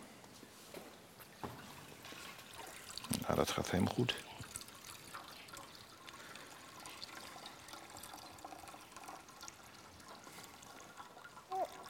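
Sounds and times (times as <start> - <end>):
child pouring water into a baptismal font: 1.3 - 11.8
speech: 3.3 - 4.3.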